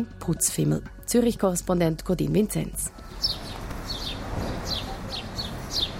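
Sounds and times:
speech: 0.0 - 3.4
sparrows chirping from yew and box hedges in Zürich: 3.0 - 5.9.

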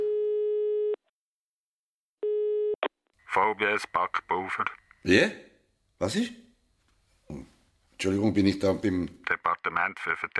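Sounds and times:
steady electronic telephone tone while calling: 0.0 - 1.0, 2.2 - 2.9
speech: 3.4 - 6.4, 7.3 - 10.3.

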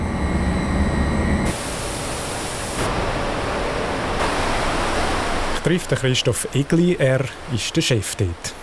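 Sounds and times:
wastewater treatment plant machinery roar: 0.0 - 6.2
dense rushing water at a wastewater treatment plant: 1.5 - 8.6
speech: 5.6 - 8.6.

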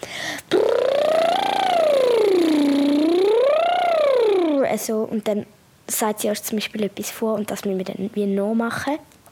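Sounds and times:
loud lip trill vocal warm-up with gliding pitch: 0.4 - 4.7
speech: 4.8 - 9.2.

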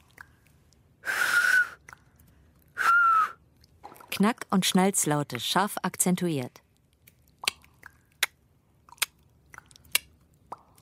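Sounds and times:
loud two-finger whistle: 1.1 - 1.8, 2.8 - 3.4
speech: 4.2 - 6.6.

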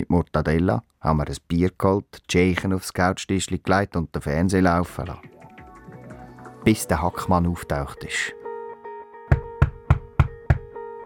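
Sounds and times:
speech: 0.0 - 5.4, 6.6 - 8.4
heavy knocking on a door: 9.3 - 10.7.

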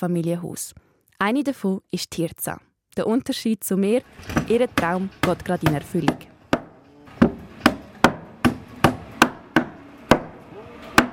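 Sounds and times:
speech: 0.0 - 6.3
hammer blows at a house construction site in Zurich canton, Switzerland: 4.4 - 11.1.

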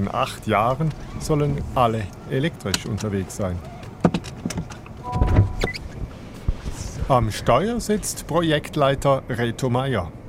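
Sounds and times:
speech: 0.0 - 3.8, 7.1 - 10.2
seatbelts clicking into buckles inside an electric car: 2.6 - 5.8.

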